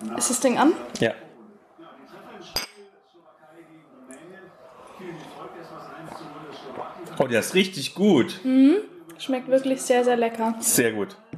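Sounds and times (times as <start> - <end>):
people chatting: 0.0 - 11.2
speech: 0.2 - 1.2, 7.2 - 11.3
glasses clinking in a toast: 2.5 - 2.9.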